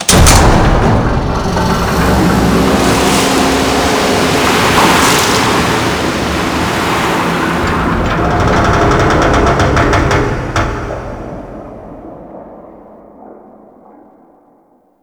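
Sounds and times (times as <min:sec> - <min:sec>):
clunking alarm: 0:00.0 - 0:11.9
ocean ambience: 0:00.0 - 0:15.0.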